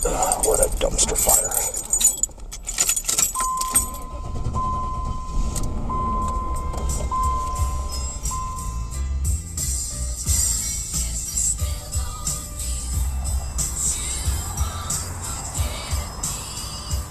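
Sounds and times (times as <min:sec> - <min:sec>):
faint clinks inside a driving hearse: 0:00.0 - 0:04.2
keys jangling as a man gets into a silver hearse: 0:00.0 - 0:04.2
hearse engine rumble as it drives off: 0:00.0 - 0:17.0
road noise under a driving hearse: 0:00.0 - 0:17.0
speech: 0:00.8 - 0:01.6.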